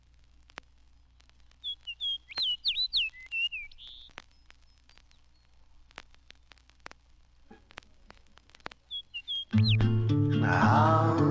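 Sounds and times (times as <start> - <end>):
quiet ticks: 0.0 - 10.2
fox sparrow singing a rich slurred whistled phrase: 1.6 - 5.5, 8.9 - 11.2.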